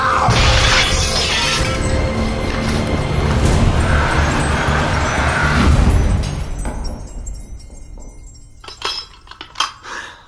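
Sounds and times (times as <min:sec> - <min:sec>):
mirror shattering: 0:00.2 - 0:02.7
scattered tinkling shards of mirror glass: 0:00.3 - 0:02.1, 0:03.8 - 0:10.1.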